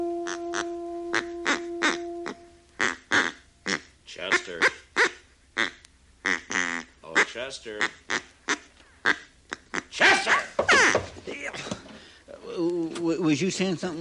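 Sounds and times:
mail-order duck call blown, nasal quacks: 0:00.2 - 0:11.1
speech: 0:13.6 - 0:14.0.

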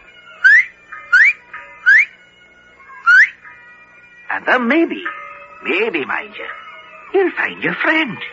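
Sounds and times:
whistles as a signal: 0:00.4 - 0:02.2, 0:03.0 - 0:03.4
speech: 0:04.4 - 0:08.3.

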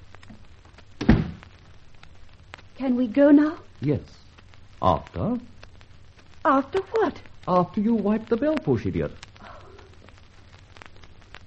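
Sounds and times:
door being shut with a dull low thunk and brief rattle: 0:01.0 - 0:01.4
speech: 0:02.8 - 0:04.2, 0:04.8 - 0:05.5, 0:06.4 - 0:09.2.

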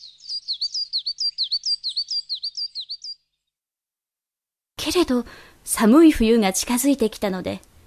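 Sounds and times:
small bird singing high chirps on a branch: 0:00.0 - 0:03.6
speech: 0:04.9 - 0:07.7.

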